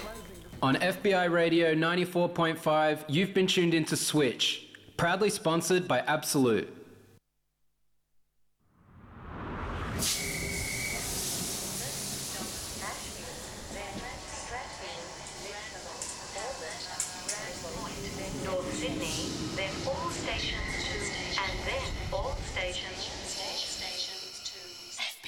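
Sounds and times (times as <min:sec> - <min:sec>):
speech: 0:00.6 - 0:06.8
metallic squeals: 0:10.0 - 0:25.0
train rumbling: 0:10.1 - 0:24.9.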